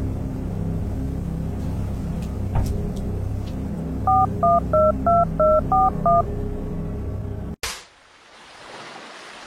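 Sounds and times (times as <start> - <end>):
low rumble: 0.0 - 7.6
bright melodic phone ringtone: 4.1 - 6.2
touch-tone phone dialing beeps: 4.1 - 6.2
speech: 4.4 - 6.4.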